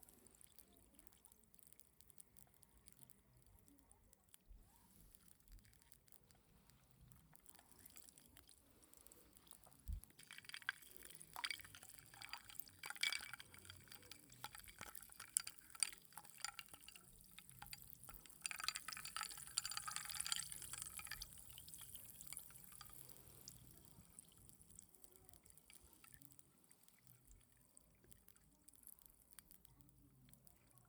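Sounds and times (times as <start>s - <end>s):
barley tea pouring into a glass: 6.6s - 30.8s.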